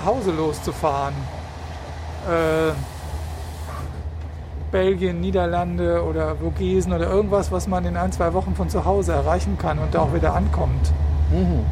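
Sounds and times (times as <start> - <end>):
speech: 0.0 - 1.4, 2.2 - 2.9, 4.7 - 11.6
low rumble inside a moving train carriage: 0.0 - 11.6
broadband hiss inside a moving train carriage: 2.2 - 4.0.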